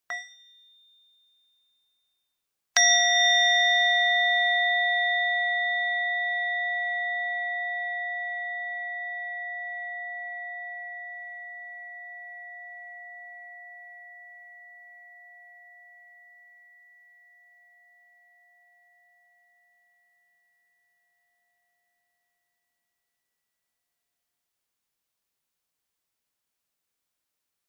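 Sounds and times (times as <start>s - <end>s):
medium bell: 0.1s - 1.9s, 2.8s - 19.6s.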